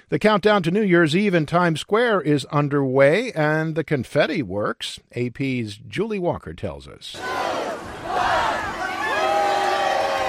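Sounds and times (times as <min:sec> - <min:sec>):
speech: 0:00.0 - 0:07.4
large crowd cheering and whooping: 0:07.2 - 0:10.2.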